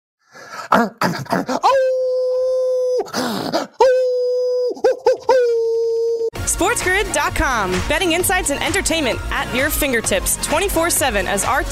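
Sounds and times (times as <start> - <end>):
speech: 0.7 - 2.0, 3.0 - 3.9, 6.6 - 11.7
man imitating a red wolf howl: 1.6 - 3.1, 3.8 - 6.3.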